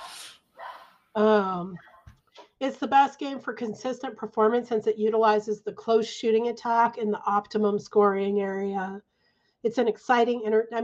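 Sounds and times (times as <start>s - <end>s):
higher drawn-out yelping bark: 0.6s - 0.9s
speech: 1.2s - 1.9s, 2.6s - 10.8s.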